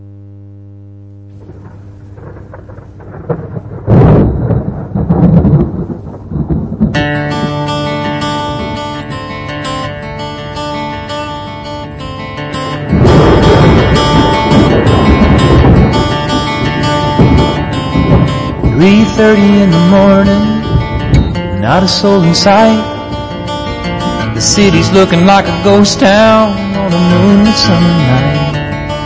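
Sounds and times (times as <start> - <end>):
rolling thunder: 1.4 - 9.6, 12.9 - 28.0
storm noise: 1.4 - 10.6, 12.7 - 29.0
country song with guitar and keyboard: 7.0 - 29.0
speech: 21.7 - 22.9, 24.4 - 28.4.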